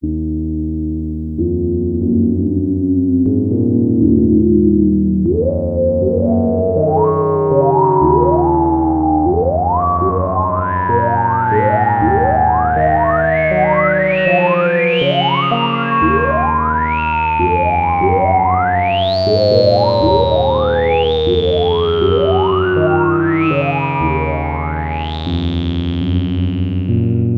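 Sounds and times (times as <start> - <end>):
soft sounds from an Ensoniq Mirage DSK-8 sampler: 0.0 - 27.3.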